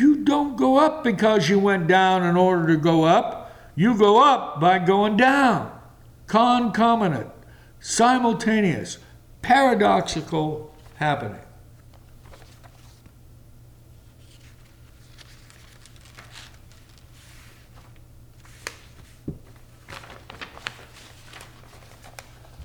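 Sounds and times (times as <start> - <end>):
speech: 0.3 - 11.4
paper pages rustling and turning: 11.8 - 13.2, 14.0 - 22.6.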